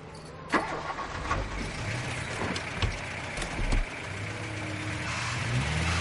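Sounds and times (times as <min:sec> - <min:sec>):
car engine turning over, catching and rumbling as the car moves off: 0:00.5 - 0:05.9.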